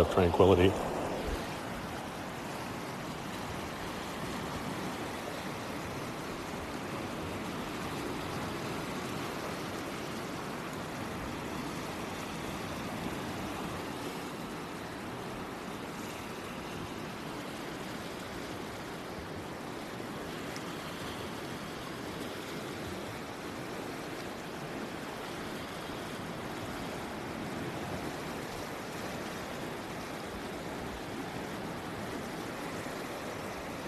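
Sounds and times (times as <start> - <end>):
speech: 0.0 - 1.0
wind buffeting: 0.0 - 2.0
ocean surf washing onto the shore: 0.0 - 33.8.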